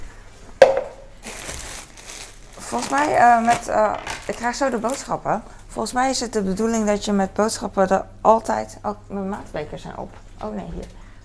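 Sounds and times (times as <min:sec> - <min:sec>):
plastic bags crinkling while portioning minced meat: 0:00.9 - 0:05.4
speech: 0:02.7 - 0:11.0.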